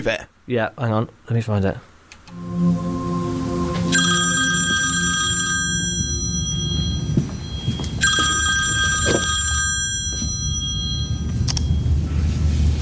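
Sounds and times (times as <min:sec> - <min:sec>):
speech: 0:00.0 - 0:02.9
low rumbling hum: 0:02.3 - 0:08.3, 0:09.7 - 0:12.7
telephone ringing in bright steady tones: 0:03.9 - 0:11.9.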